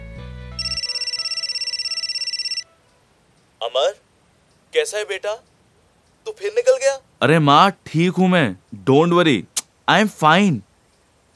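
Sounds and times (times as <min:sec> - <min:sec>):
mobile phone ringtone trilling at a roadside dhaba: 0:00.6 - 0:02.7
speech: 0:03.6 - 0:04.0, 0:04.7 - 0:05.5, 0:06.2 - 0:10.7.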